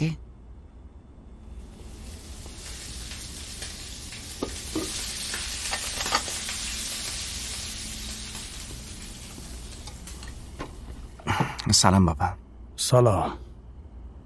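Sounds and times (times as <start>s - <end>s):
speech: 0.0s - 0.2s, 11.7s - 13.4s
tofu and bok choy stir-fry sizzling in a hot pan: 1.6s - 11.2s
utensil clinking and scraping while stirring stir-fry: 4.4s - 6.6s.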